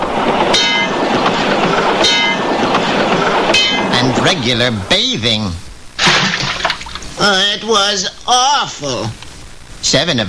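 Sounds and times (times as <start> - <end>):
subway train clattering on rails with metallic clacks: 0.0 - 5.2
speech: 4.3 - 6.4, 7.2 - 9.2, 9.8 - 10.2.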